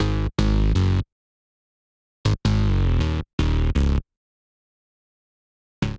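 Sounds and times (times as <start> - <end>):
bassline in G# minor: 0.0 - 1.0, 2.3 - 4.0.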